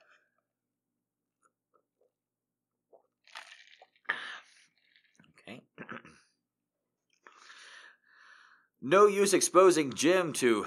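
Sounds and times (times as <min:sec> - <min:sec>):
person slurping sips of water: 0:03.3 - 0:05.2
speech: 0:08.8 - 0:10.6.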